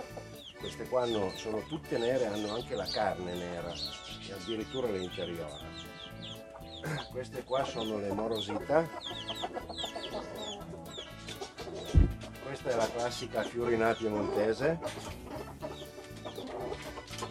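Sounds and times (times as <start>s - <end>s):
farmyard murmur: 0.0s - 17.2s
flock of Merens hens clucking in a coop on a farm: 0.0s - 17.2s
speech: 0.7s - 6.0s, 6.8s - 9.4s, 12.5s - 15.2s
dull thump: 11.9s - 12.3s.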